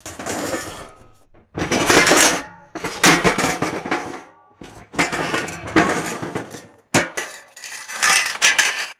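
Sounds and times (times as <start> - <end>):
metallic objects thrown into a debris pile: 0.0 - 8.9.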